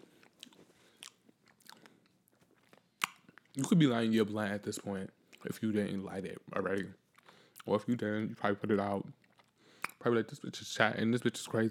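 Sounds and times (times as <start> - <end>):
crisp crunchy chewing of a cannabis edible: 0.0 - 4.0, 4.6 - 10.0
speech: 3.6 - 7.0, 7.6 - 9.2, 10.0 - 11.6.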